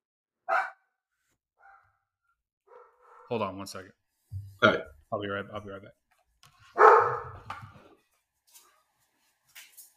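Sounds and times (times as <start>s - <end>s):
dog barking: 0.4s - 0.9s, 1.6s - 2.0s, 2.6s - 3.3s, 6.7s - 7.5s
speech: 3.3s - 4.0s, 4.6s - 6.0s.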